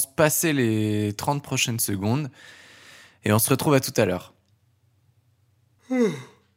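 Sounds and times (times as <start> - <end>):
speech: 0.0 - 2.6, 3.2 - 4.4, 5.9 - 6.3
person yawning: 5.8 - 6.5.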